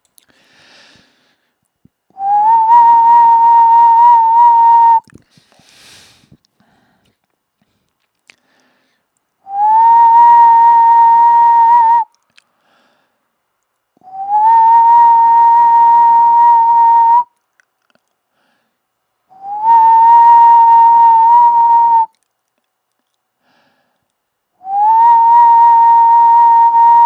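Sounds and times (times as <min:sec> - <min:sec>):
whistling: 0:02.2 - 0:05.1, 0:09.5 - 0:12.2, 0:14.0 - 0:17.4, 0:19.3 - 0:22.2, 0:24.6 - 0:27.0.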